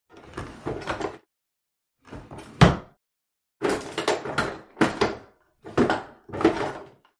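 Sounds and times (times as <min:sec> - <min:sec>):
bathroom drawers: 0:00.1 - 0:01.3, 0:02.0 - 0:02.9, 0:03.6 - 0:07.1.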